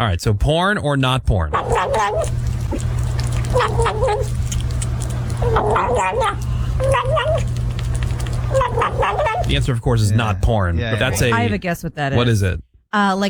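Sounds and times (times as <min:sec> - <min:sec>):
speech: 0:00.0 - 0:02.9, 0:03.5 - 0:04.6, 0:05.4 - 0:07.6, 0:08.5 - 0:13.2
kitten eating food noisily with gobbling squeaks: 0:01.5 - 0:09.9, 0:10.9 - 0:11.6
low hum: 0:01.6 - 0:09.7.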